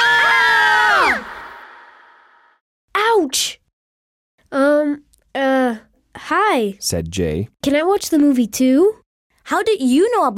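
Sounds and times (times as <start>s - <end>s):
girls screaming together: 0.0s - 1.8s
speech: 3.2s - 3.6s, 4.5s - 10.3s.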